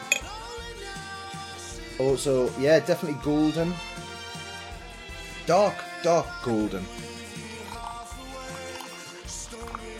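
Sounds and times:
speech: 0:02.0 - 0:04.0, 0:05.5 - 0:07.2
dark golden beer pouring from a bottle into a glass: 0:07.4 - 0:09.9.

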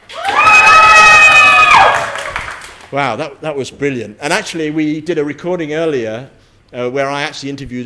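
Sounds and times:
crowd of children screaming and shouting: 0:00.2 - 0:02.0
clapping: 0:01.7 - 0:02.9
speech: 0:02.9 - 0:07.8.

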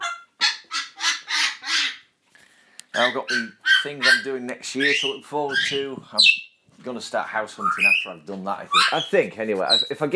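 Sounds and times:
pet parrot squawking: 0:00.0 - 0:02.1, 0:02.9 - 0:06.5, 0:07.6 - 0:09.9
speech: 0:03.0 - 0:10.1.

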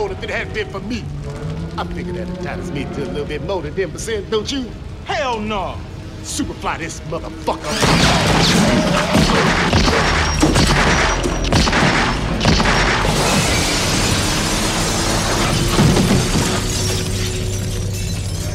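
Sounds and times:
speech: 0:00.1 - 0:10.2
shattering: 0:07.6 - 0:18.5
gunfire in a film shootout: 0:07.8 - 0:16.5.

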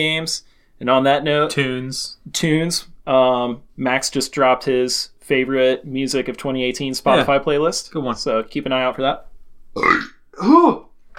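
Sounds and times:
speech: 0:00.0 - 0:10.8
person burping: 0:09.8 - 0:10.9.

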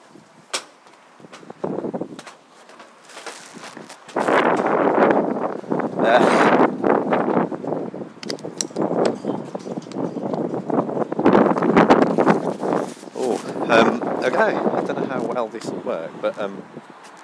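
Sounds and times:
gusty wind buffeting the microphone: 0:01.2 - 0:02.3, 0:03.3 - 0:17.2
speech: 0:14.4 - 0:16.7.

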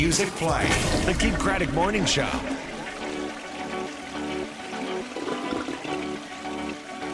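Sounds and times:
speech: 0:00.0 - 0:02.7
toilet flushing: 0:00.4 - 0:07.1.

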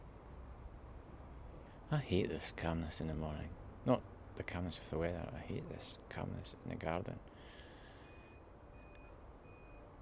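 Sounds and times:
engine and traffic rumble: 0:00.0 - 0:09.9
speech: 0:01.9 - 0:07.6
truck reversing beeps: 0:07.8 - 0:09.9.

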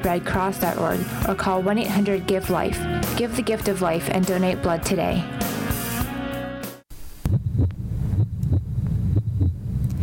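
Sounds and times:
speech: 0:00.0 - 0:05.6
steady heartbeat in low double knocks: 0:07.2 - 0:10.0.

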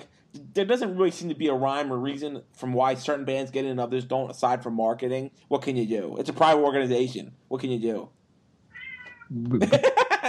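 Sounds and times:
speech: 0:00.6 - 0:08.2, 0:09.3 - 0:09.9
cat meowing: 0:08.7 - 0:09.4
laughter: 0:09.5 - 0:10.2.

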